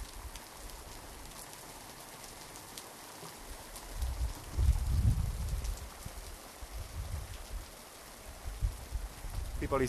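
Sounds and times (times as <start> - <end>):
heavy rain during a harsh hailstorm in a valley: 0.0 - 9.8
low rumbling gusts during a hailstorm: 4.0 - 7.7, 8.3 - 9.8.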